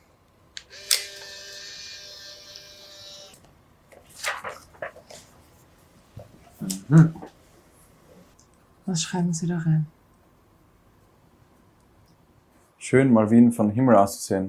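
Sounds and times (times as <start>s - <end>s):
camera shutter click: 0.6s - 3.4s
speech: 6.9s - 7.2s, 9.0s - 10.0s, 12.9s - 14.4s.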